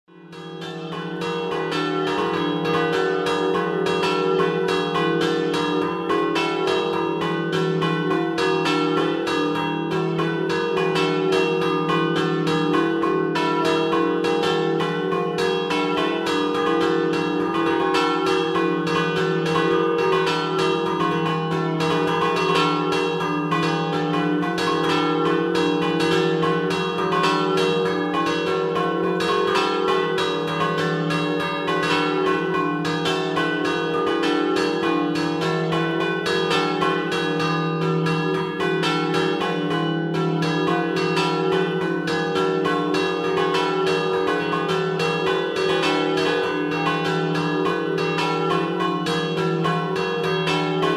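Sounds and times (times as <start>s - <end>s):
bells ringing a scampanottata in Villacaccia: 0.4s - 50.9s.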